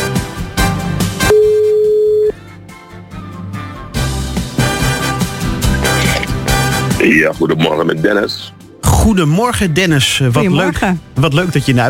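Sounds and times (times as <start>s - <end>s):
music: 0.0s - 11.8s
telephone line tone of a call being dialled: 1.2s - 2.4s
speech: 7.0s - 11.8s.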